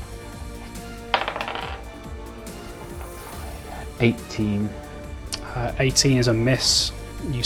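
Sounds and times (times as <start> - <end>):
small die rolled for an attack roll clattering on a hard surface: 1.1 - 4.9
speech: 4.0 - 4.8, 5.6 - 7.4.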